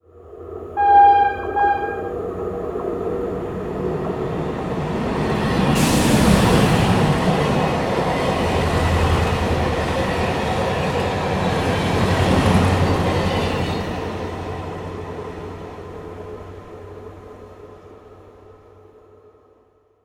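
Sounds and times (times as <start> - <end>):
train passing by: 0.1 - 19.5
train whistle: 0.7 - 2.6.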